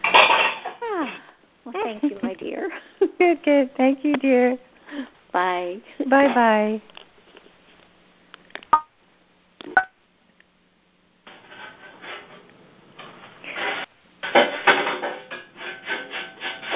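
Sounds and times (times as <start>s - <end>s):
pots and pans clattering: 0.0s - 0.8s, 11.3s - 16.7s
speech: 1.8s - 6.9s
scraping and rummaging: 11.3s - 16.7s.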